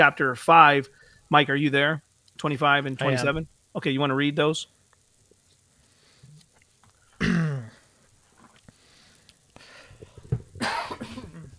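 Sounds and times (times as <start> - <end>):
speech: 0.0 - 4.8
man coughing hard with throat rasp: 7.2 - 7.8, 10.6 - 11.5.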